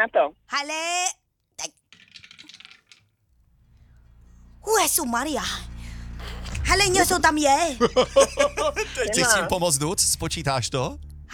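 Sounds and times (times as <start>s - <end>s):
speech: 0.0s - 1.8s, 4.6s - 5.7s, 6.6s - 11.3s
die tossed and rolling on a hard table: 1.9s - 3.2s
laughter: 6.2s - 9.8s.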